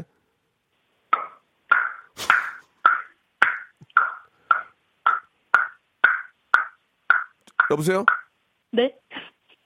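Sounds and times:
middle school student imitating a hammer knocking on wood with the mouth: 1.1s - 8.4s
speech: 7.7s - 9.1s.

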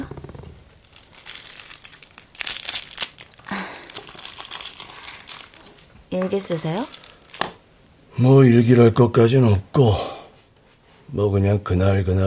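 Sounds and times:
thin instant coffee mix packet being torn open: 0.8s - 7.6s
speech: 6.1s - 7.0s, 8.2s - 10.1s, 11.2s - 12.2s.

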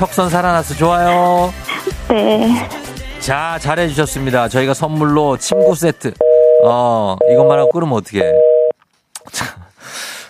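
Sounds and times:
speech: 0.0s - 8.5s
phone busy tone beep after a call drops: 5.6s - 8.7s.

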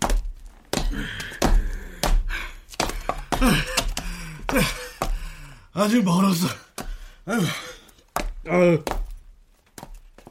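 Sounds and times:
dull footfalls on stair steps: 0.0s - 5.5s, 6.4s - 10.2s
heavy panting from someone climbing stairs: 0.8s - 5.7s
speech: 0.9s - 1.3s, 3.4s - 3.8s, 4.5s - 4.9s, 5.8s - 6.6s, 7.2s - 7.7s, 8.4s - 8.9s.

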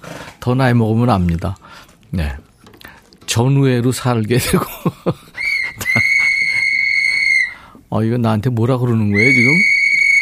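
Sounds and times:
speech: 0.4s - 2.5s, 3.4s - 5.3s, 7.9s - 9.7s
laughter: 4.4s - 6.9s
loud shrill whistle blasts: 5.4s - 7.6s, 9.1s - 10.2s.

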